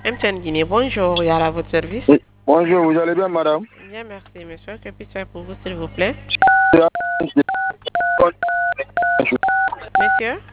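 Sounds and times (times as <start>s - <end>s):
speech: 0.0s - 10.5s
phone keypad DTMF button tones: 6.4s - 10.2s.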